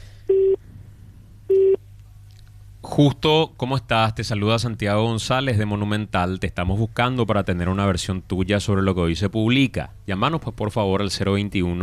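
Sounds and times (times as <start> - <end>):
faint steady hum on a telephone line: 0.0 - 11.8
mid-pitched telephone beeps before voicemail: 0.3 - 0.6, 1.5 - 1.8
speech: 3.0 - 11.8.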